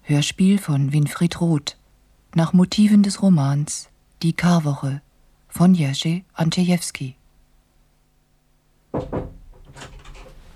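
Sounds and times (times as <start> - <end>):
speech: 0.1 - 7.2, 8.9 - 9.2
knocking on a door: 8.9 - 10.5.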